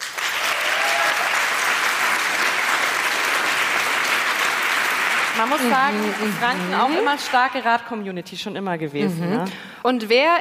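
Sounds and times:
audience clapping to vote for a favourite: 0:00.0 - 0:07.9
speech: 0:05.4 - 0:10.3.

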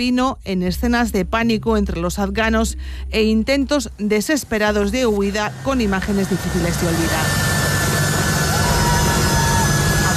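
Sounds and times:
speech: 0:00.0 - 0:07.4
jet airplane engine roaring as evacuation plane takes off from airport in Afghanistan: 0:04.5 - 0:10.1.

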